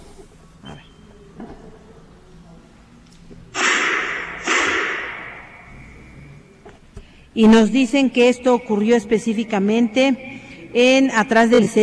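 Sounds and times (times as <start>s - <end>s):
firearm gunshots near a technical school: 3.6s - 5.8s
speech: 7.4s - 11.8s.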